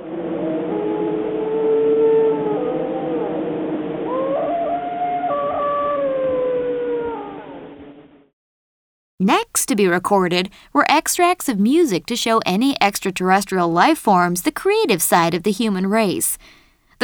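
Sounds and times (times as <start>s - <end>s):
wild dogs howling: 0.0s - 7.9s
speech: 9.3s - 17.0s.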